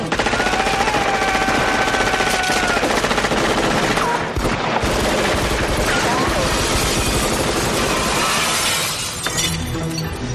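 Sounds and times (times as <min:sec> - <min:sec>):
machine-gun fire in a movie gunfight: 0:00.1 - 0:08.6
crashing, shattering glass: 0:08.1 - 0:10.2.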